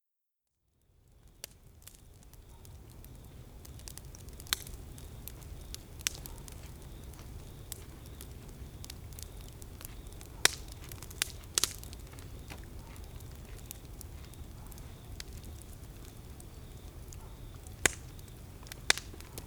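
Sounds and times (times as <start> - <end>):
fireplace crackling with pops and snaps: 1.0 - 19.4.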